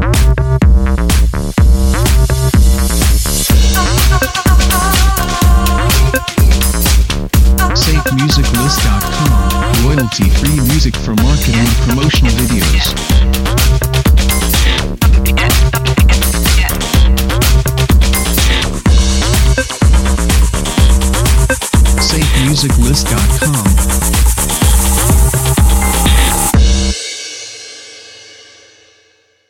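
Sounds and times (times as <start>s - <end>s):
upbeat techno house bumper: 0.1s - 26.9s.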